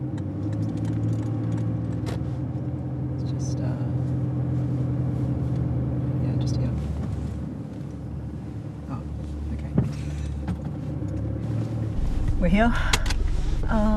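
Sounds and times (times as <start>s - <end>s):
car engine idling heard from inside the cabin at the roadside: 0.2s - 13.9s
speech: 12.5s - 13.0s.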